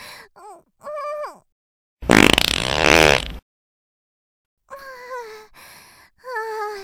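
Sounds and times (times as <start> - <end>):
long loud rough fart: 2.0 - 3.4.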